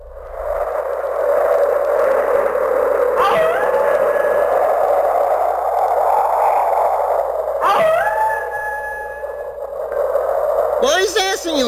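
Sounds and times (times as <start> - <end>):
strong steady wind: 0.0 - 11.6
wolves howling: 2.4 - 10.1.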